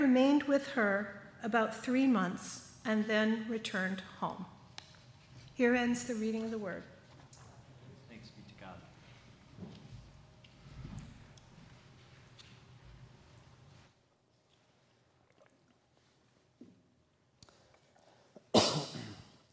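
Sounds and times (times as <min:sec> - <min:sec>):
speech: 0:00.1 - 0:04.6, 0:05.6 - 0:06.9
preacher coughing sharply: 0:18.5 - 0:19.4.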